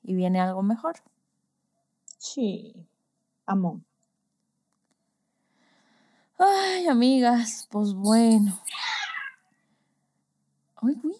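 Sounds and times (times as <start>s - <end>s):
speech: 0.1s - 1.2s, 2.2s - 2.9s, 3.5s - 3.9s, 6.4s - 9.0s, 10.8s - 11.1s
cat meowing: 8.7s - 9.4s.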